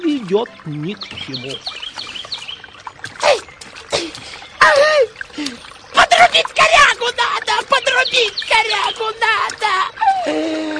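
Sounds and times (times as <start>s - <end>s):
water splashing and sloshing as a man climbs in: 0.0s - 10.7s
speech: 0.3s - 1.8s, 4.6s - 10.7s.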